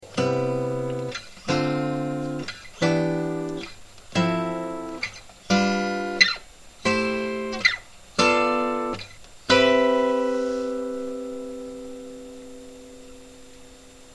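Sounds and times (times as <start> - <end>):
guitar playing in harmonic major: 0.0 - 14.1.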